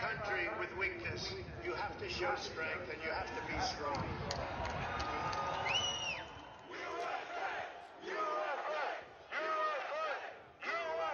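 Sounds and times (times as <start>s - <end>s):
speech: 0.1s - 5.3s
large crowd at a rally roaring and shouting on an impromptu march: 3.0s - 11.1s
higher whoops: 4.6s - 6.9s
crowd chanting: 5.7s - 11.1s.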